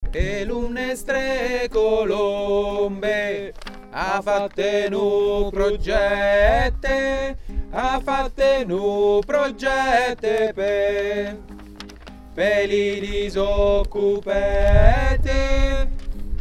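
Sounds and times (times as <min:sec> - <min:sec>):
tenors singing a couplet: 0:00.1 - 0:16.1.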